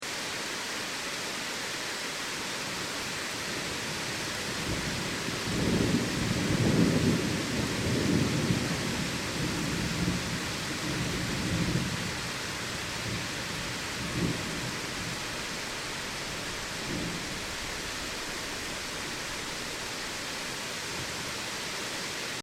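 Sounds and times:
heavy rain in a storm: 0.0 - 22.4
thunder: 4.5 - 20.2.

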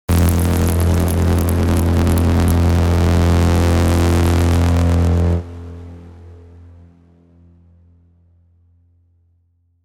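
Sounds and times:
throbbing high electric voltage: 0.0 - 5.8.

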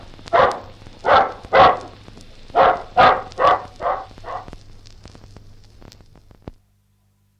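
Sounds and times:
low hum: 0.0 - 6.9
bulldog barking gruffly: 0.2 - 4.6.

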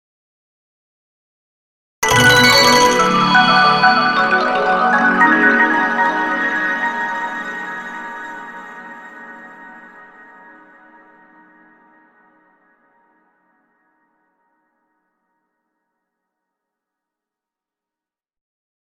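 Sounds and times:
mallet shimmer with delay sonic logo: 2.0 - 9.8.

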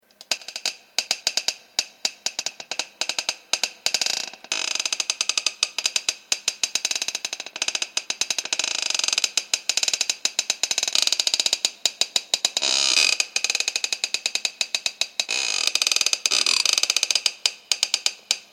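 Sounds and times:
creaking under stress: 0.1 - 18.5.

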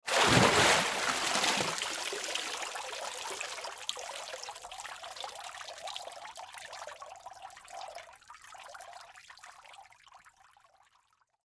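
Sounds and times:
water splash from a body standing up: 0.0 - 2.7.

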